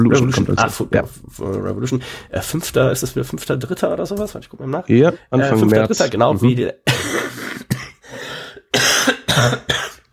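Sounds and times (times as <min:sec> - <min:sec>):
speech: 0:00.0 - 0:07.0, 0:08.7 - 0:09.8
harsh raspy coughing fit: 0:06.8 - 0:10.1.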